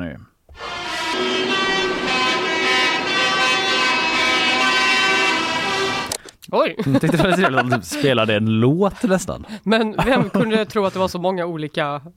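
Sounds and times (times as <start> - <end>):
tractor horns blaring at a protest in Brussels: 0.6 - 6.2
speech: 6.6 - 12.1
laughter: 6.8 - 8.3, 9.9 - 11.1.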